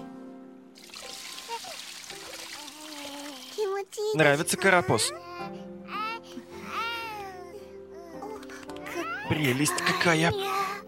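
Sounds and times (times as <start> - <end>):
warm water pouring into a baby's bath: 0.8 - 3.7
speech: 4.1 - 5.6, 9.3 - 10.6.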